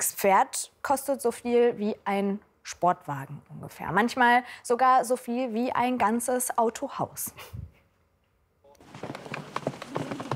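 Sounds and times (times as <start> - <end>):
speech: 0.2 - 7.7
foal's hooves clip-clopping on a hard presentation runway: 8.8 - 10.3.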